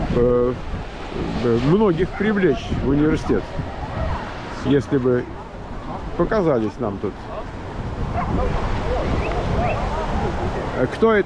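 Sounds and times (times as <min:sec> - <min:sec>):
steady rushing noise: 0:00.0 - 0:11.2
speech: 0:00.2 - 0:03.8, 0:04.6 - 0:05.4, 0:06.0 - 0:07.4, 0:08.2 - 0:10.0, 0:10.8 - 0:11.2
small dog yipping and barking: 0:03.9 - 0:04.2, 0:08.1 - 0:10.3.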